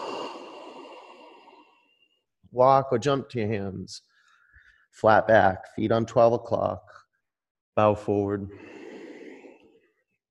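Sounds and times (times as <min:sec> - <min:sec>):
long airy exhale during yoga on a mat: 0:00.0 - 0:02.1, 0:08.5 - 0:09.9
speech: 0:02.5 - 0:04.1, 0:04.9 - 0:07.0, 0:07.8 - 0:08.8.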